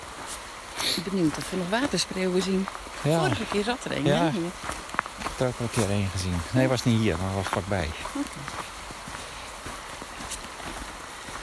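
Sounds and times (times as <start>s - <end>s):
constant hiss of outdoor noise: 0.0s - 11.4s
horse hooves clip-clopping at a walk: 0.0s - 11.4s
speech: 1.0s - 8.7s.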